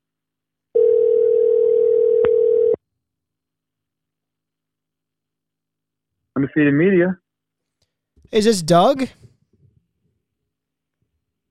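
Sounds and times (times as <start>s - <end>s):
outgoing telephone call ringing tone through a Bluetooth connection: 0.8s - 2.8s
speech: 6.4s - 7.2s, 8.3s - 9.2s.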